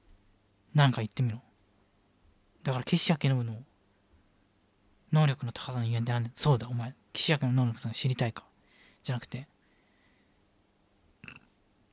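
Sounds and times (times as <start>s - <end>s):
speech: 0.8s - 1.5s, 2.6s - 3.7s, 5.1s - 9.5s
throaty burp: 11.2s - 11.6s.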